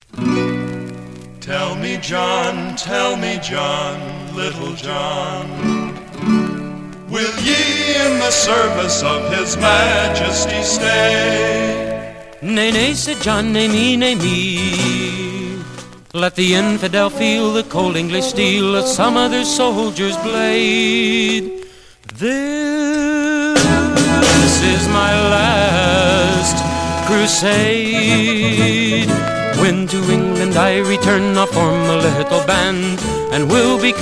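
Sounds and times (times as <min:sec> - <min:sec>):
lute: 0:00.0 - 0:33.9
flute: 0:01.5 - 0:13.3, 0:16.4 - 0:22.3, 0:23.6 - 0:33.9
bass: 0:05.9 - 0:16.1, 0:23.6 - 0:33.9.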